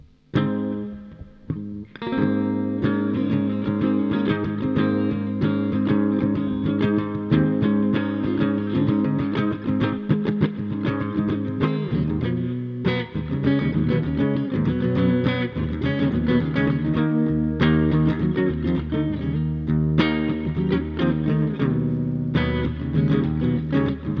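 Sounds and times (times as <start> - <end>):
clean electric guitar: 0.0 - 24.1.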